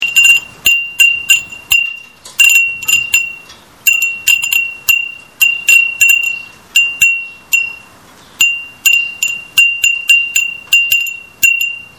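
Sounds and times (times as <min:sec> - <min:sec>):
furin wind chime: 0:00.0 - 0:11.9.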